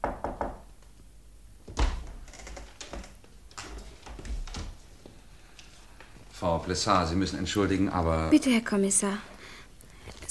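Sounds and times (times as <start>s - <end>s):
door knocks and dull thuds: 0.0s - 0.7s, 1.7s - 2.3s
speech: 6.4s - 9.3s.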